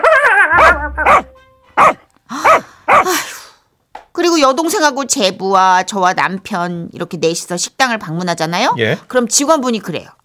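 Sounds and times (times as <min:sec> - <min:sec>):
pet dog barking: 0:00.0 - 0:03.1
speech: 0:04.4 - 0:10.2.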